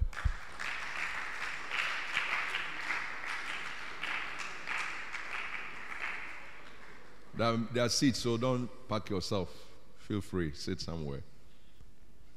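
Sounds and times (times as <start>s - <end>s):
audience clapping: 0.0s - 7.4s
speech: 7.4s - 11.3s.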